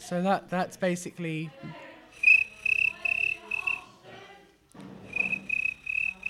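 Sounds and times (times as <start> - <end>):
speech: 0.1 - 1.9
voice imitating cricket chirping: 2.2 - 3.8, 5.1 - 6.2.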